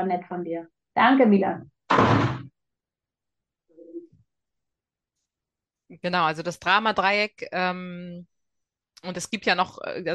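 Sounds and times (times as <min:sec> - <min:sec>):
speech: 0:00.0 - 0:02.6, 0:05.9 - 0:08.3, 0:09.0 - 0:10.1
door pushed shut with a solid thud: 0:01.9 - 0:02.5.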